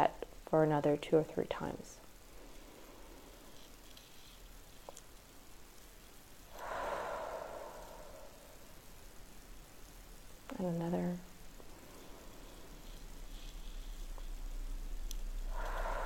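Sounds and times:
speech: 0.0 - 2.0, 10.6 - 11.3
faint hiss: 0.0 - 16.0
deep belly breaths with slow exhale: 6.5 - 8.7, 15.5 - 16.0.

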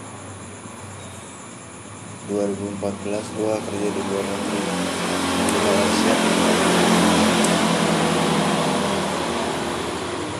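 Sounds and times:
motorcycle engines rumbling outdoors: 2.0 - 10.3
speech: 2.3 - 4.8, 5.4 - 6.6.

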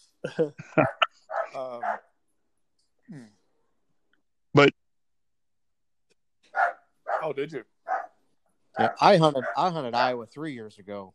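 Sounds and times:
speech: 0.2 - 2.1, 3.1 - 3.4, 4.6 - 4.8, 7.2 - 7.7, 8.8 - 11.1
small dog barking excitedly at food bowl: 0.9 - 2.0, 6.6 - 7.3, 7.9 - 8.1, 8.8 - 9.7.

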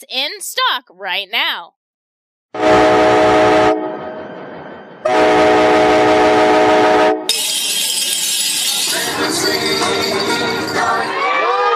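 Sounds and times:
speech: 0.0 - 1.8, 9.0 - 11.3
holiday train horn blasts: 2.6 - 4.0, 5.0 - 7.4
holiday train rumbling and screeching through a rail yard: 2.6 - 11.6.

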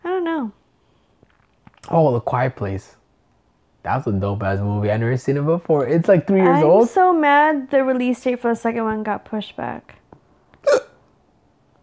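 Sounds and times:
speech: 1.9 - 3.0, 3.8 - 10.0
sharp drunk hiccup: 10.6 - 11.1.

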